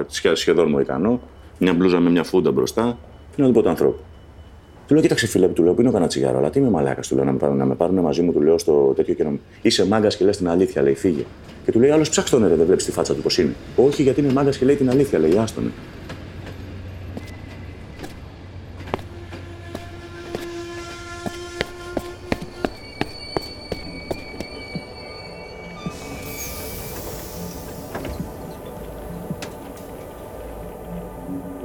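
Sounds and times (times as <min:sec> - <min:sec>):
speech: 0:00.0 - 0:04.1, 0:04.9 - 0:16.0
low rumble of a moving train heard from inside: 0:09.9 - 0:31.6
long high-pitched squeals of train wheels on rails: 0:11.3 - 0:31.6.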